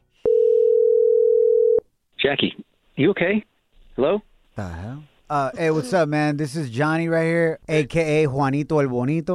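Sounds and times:
telephone ringback tone: 0:00.2 - 0:01.8
speech: 0:02.3 - 0:09.3.

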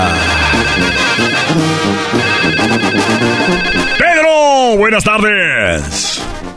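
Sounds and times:
phone ringtone at a radio station: 0:00.2 - 0:04.3
speech: 0:04.9 - 0:06.5.

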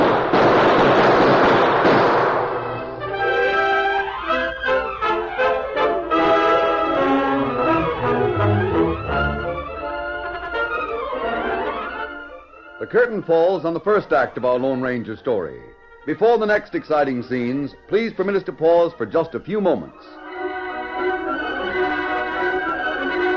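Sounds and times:
gunfire sound effect in a radio western shootout: 0:00.0 - 0:02.9
orchestral music: 0:02.2 - 0:23.3
speech: 0:12.9 - 0:20.2.

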